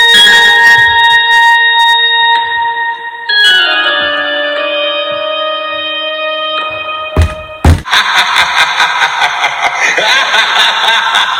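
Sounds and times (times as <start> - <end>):
spooky electronic Halloween school bell chime melody: 0.0 - 7.7
loud noisy cackling laughter: 7.9 - 11.3.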